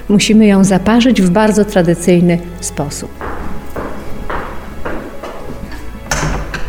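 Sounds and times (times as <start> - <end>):
speech: 0.1 - 3.3
heavy wooden door opening and closing: 3.2 - 6.6.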